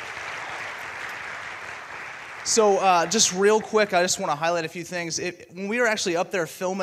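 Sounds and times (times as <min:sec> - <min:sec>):
audience applause: 0:00.0 - 0:04.4
speech: 0:02.4 - 0:06.8.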